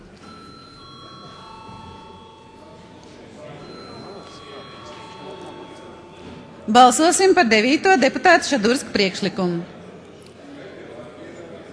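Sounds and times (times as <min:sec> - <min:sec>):
parliamentary voting bell ringing: 0:00.0 - 0:09.3
murmur of many voices chatting: 0:00.0 - 0:11.7
speech: 0:06.7 - 0:09.8.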